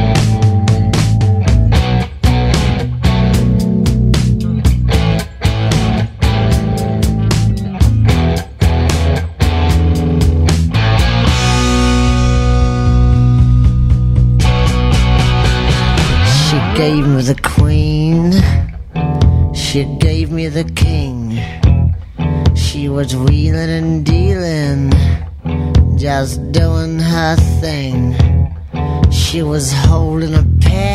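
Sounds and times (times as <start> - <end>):
full band playing a song: 0.1 - 22.8
steady punchy drum beat: 0.1 - 30.9.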